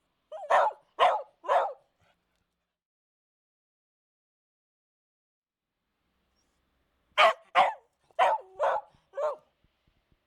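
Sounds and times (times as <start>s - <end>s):
dog barking: 0.3s - 1.9s, 7.2s - 9.5s.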